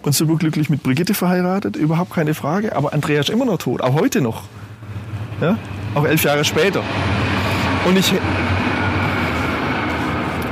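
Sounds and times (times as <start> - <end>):
speech: 0.0 - 4.6, 5.4 - 7.2, 7.8 - 8.4
train rumbling: 0.0 - 10.5
deep low hum: 1.7 - 10.5.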